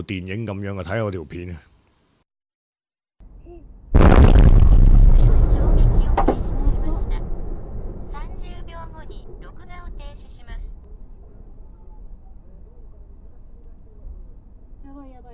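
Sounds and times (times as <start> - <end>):
speech: 0.0 - 1.7
huge explosion caused by an earthquake: 3.9 - 12.7
deep roaring rumble: 4.0 - 14.8.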